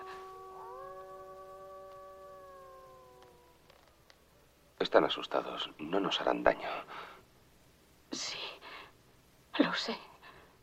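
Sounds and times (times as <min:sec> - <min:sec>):
wolf howling: 0:00.0 - 0:03.9
speech: 0:04.8 - 0:07.0, 0:09.8 - 0:10.1.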